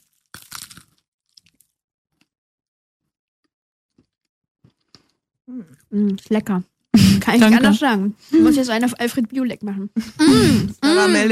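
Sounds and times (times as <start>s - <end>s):
crunches and crackles of chewing: 0.0s - 2.3s, 3.9s - 5.9s
crunchy bite into a macaron: 0.0s - 2.3s
speech: 5.5s - 11.2s.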